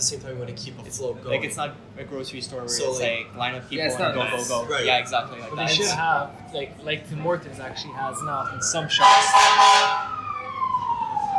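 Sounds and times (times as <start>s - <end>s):
speech: 0.0s - 9.7s
fire truck siren wailing: 2.7s - 11.3s.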